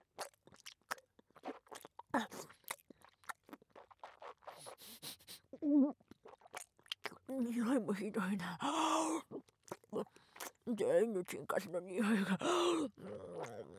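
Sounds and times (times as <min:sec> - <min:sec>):
chewing on something that melts in the mouth: 0:00.0 - 0:05.4, 0:06.0 - 0:07.3, 0:09.4 - 0:10.7
speech: 0:05.7 - 0:06.0, 0:07.3 - 0:13.6.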